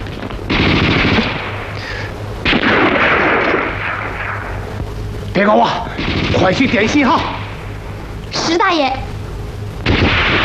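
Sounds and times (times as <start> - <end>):
machine-gun fire: 0.5 - 1.8, 2.4 - 4.8, 6.0 - 7.8, 9.8 - 10.4
speech: 5.4 - 7.4, 8.5 - 9.0.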